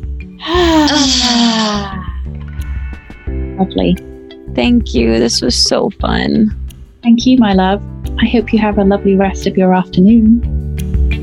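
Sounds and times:
speech: 0.4s - 2.0s, 3.6s - 10.5s
deep breath let out as a long loud voiced sigh: 0.4s - 2.2s.

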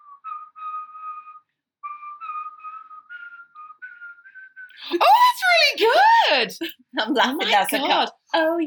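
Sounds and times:
person whistling a bright pop melody: 0.0s - 5.0s
speech: 4.8s - 8.6s.

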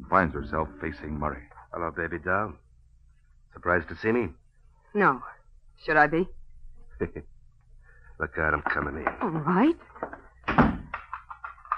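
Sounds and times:
speech: 0.1s - 2.6s, 3.6s - 6.4s, 7.0s - 7.3s, 8.2s - 10.2s
apartment door thudding shut: 10.4s - 10.9s.

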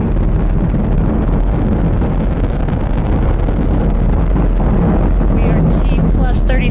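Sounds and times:
Falcon 9 rocket launch roar: 0.0s - 6.6s.

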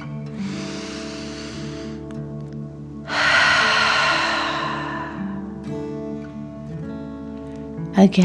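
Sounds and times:
soft steady musical drone: 0.0s - 8.2s
deep breathing in and out through the mouth as a dragon-breath exercise: 0.3s - 2.2s, 3.0s - 6.1s.

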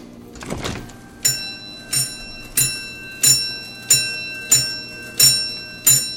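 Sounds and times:
clunk of antique strength tester machine: 0.2s - 3.4s
small mechanical bell ringing inside antique strength tester machine: 1.0s - 6.1s.

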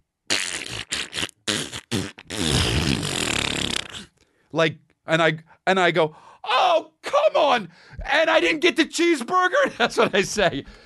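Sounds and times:
voice imitating a loud fart with a buzzing raspberry: 0.3s - 4.1s
speech: 4.6s - 10.8s.

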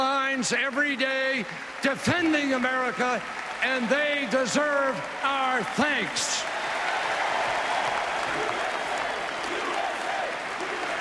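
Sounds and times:
speech: 0.0s - 6.8s
large crowd applauding and cheering: 0.9s - 11.0s
scattered shouts: 8.1s - 11.0s.

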